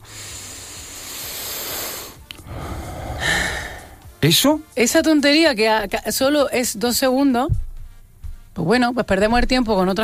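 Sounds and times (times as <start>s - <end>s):
deep breath in and out: 0.0s - 4.2s
speech: 4.2s - 7.6s, 8.6s - 10.0s.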